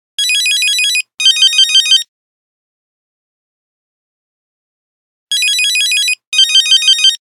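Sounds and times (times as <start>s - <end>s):
Nokia phone buzzer: 0.2s - 2.1s, 5.3s - 7.2s.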